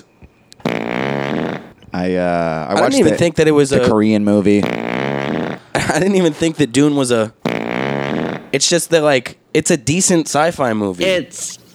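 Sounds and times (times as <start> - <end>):
fart sound effect: 0.6 - 1.8, 4.6 - 5.8, 7.4 - 8.6
speech: 2.0 - 4.8, 5.9 - 7.4, 8.5 - 11.6.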